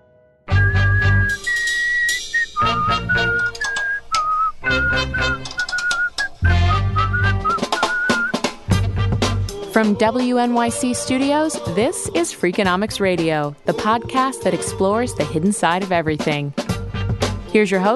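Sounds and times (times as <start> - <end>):
person whistling a bright melodic tune: 0.5 - 8.5
steady musical backing with bass and percussion: 0.6 - 4.0, 4.6 - 10.2, 11.0 - 17.6
speech: 9.8 - 16.6, 17.5 - 17.9.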